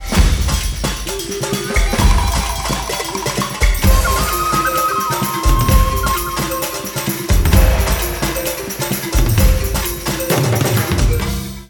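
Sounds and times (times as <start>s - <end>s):
African tune: 0.1s - 11.6s.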